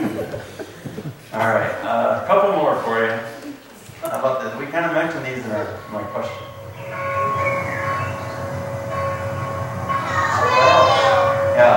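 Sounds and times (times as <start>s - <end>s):
laughter: 0.0s - 2.2s
faint indistinct voices: 0.9s - 11.7s
church bell ringing: 4.8s - 11.7s
continuous low rumble: 5.5s - 11.7s.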